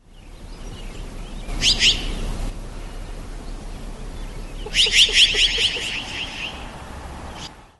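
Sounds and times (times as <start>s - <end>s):
steady hiss: 0.0s - 7.7s
chara jay species harsh chattering calls: 1.5s - 2.4s, 3.0s - 6.8s.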